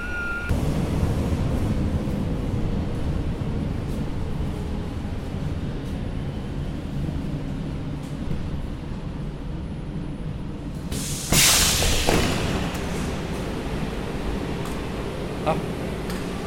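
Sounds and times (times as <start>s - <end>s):
moving subway car rumbling: 0.0s - 16.4s
sharp hiss: 10.9s - 12.2s.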